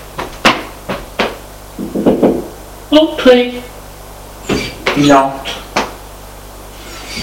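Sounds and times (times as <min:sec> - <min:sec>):
knocking on a wooden bedroom door: 0:00.2 - 0:02.5
speech: 0:02.9 - 0:03.7, 0:05.0 - 0:05.6.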